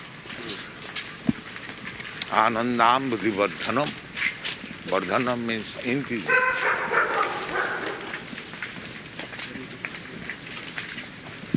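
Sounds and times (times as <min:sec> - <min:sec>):
speech: 0:02.3 - 0:04.0, 0:04.8 - 0:06.7
stray dog barking on a campus: 0:06.3 - 0:08.2.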